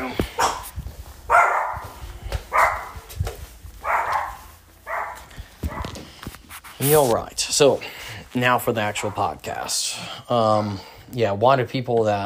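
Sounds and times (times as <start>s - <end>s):
dog barking: 0.4s - 0.7s, 1.3s - 3.1s, 3.8s - 6.0s
speech: 6.8s - 12.2s.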